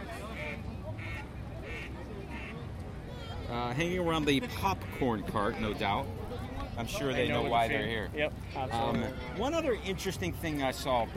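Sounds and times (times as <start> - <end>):
indistinct voices murmuring: 0.0 - 11.1
ducks quacking: 0.3 - 2.6, 4.5 - 5.6
speech: 3.5 - 6.2, 6.8 - 11.1.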